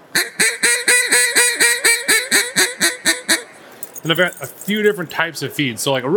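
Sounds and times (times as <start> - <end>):
duck call blown in a Cajun squeal: 0.0 - 3.6
speech: 4.0 - 6.1.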